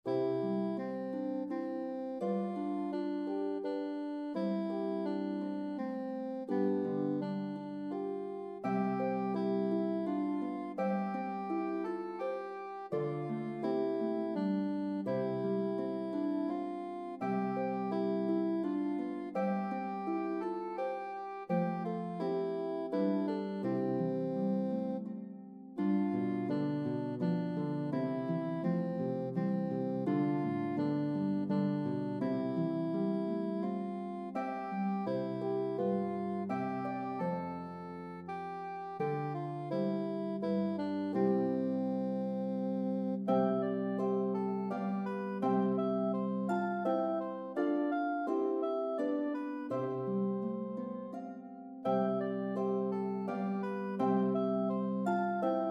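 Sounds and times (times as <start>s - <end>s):
soprano saxophone melody: 0.0s - 43.9s
harp: 0.0s - 55.7s.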